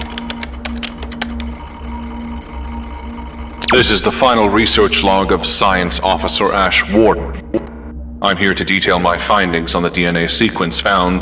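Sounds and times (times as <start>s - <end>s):
clicky computer keyboard typing while logging into a computer: 0.0s - 1.6s
steady low electronic hum: 0.0s - 9.9s
speech: 3.7s - 7.4s, 8.2s - 11.2s.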